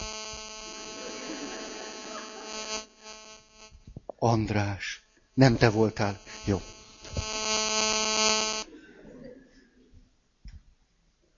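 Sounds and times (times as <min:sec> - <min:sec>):
loud steady electrical hum in a radio broadcast studio: 0:00.0 - 0:08.8
faint noise: 0:00.0 - 0:11.3
laughter: 0:00.7 - 0:02.7, 0:08.6 - 0:10.1
speech: 0:04.2 - 0:06.7.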